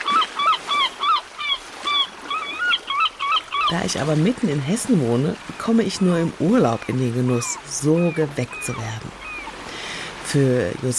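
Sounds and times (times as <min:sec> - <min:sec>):
seagulls squawking: 0:00.0 - 0:03.9, 0:06.0 - 0:09.8
speech: 0:03.7 - 0:09.2, 0:10.3 - 0:10.9.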